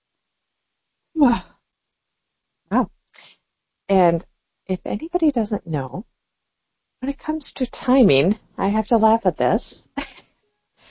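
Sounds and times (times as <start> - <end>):
speech: 1.2 - 1.5, 2.7 - 3.0, 4.1 - 6.2, 7.0 - 10.1
person yawning: 1.2 - 1.6.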